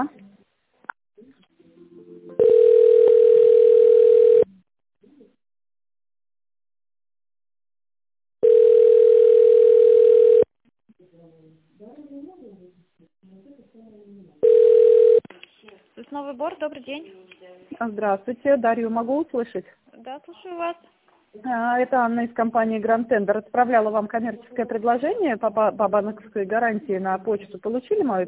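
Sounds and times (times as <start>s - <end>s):
telephone ringback tone during a call transfer: 2.4s - 4.5s, 8.4s - 10.5s, 14.4s - 15.2s
speech: 16.3s - 28.2s.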